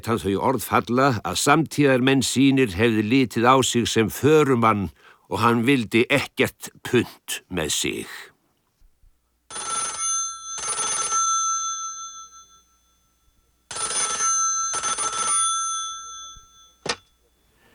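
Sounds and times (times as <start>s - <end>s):
speech: 0.0s - 8.3s
telephone bell ringing: 9.5s - 17.5s.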